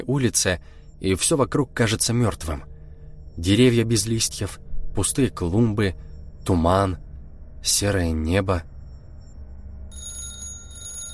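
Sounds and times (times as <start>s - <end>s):
speech: 0.1s - 2.7s, 3.4s - 7.0s, 7.6s - 8.7s
loud shrill bell ringing: 8.8s - 11.1s.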